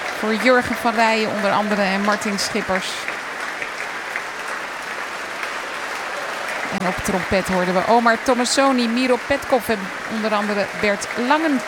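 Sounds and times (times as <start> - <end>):
orchestral concert audience applause in Amsterdam: 0.0 - 11.6
speech: 0.2 - 3.1, 6.8 - 11.6.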